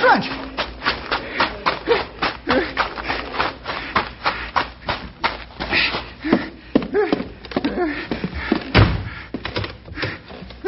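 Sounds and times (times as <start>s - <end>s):
shuffling and clattering: 0.0s - 10.6s
speech: 0.2s - 0.4s
bank door slamming shut: 8.8s - 9.1s.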